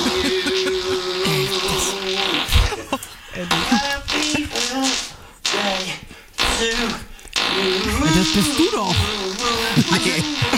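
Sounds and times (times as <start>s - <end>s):
laughter: 0.0s - 4.7s, 7.8s - 10.5s
buzzy pitched farting blasts played as a tune by a professional fart artist: 0.0s - 10.5s.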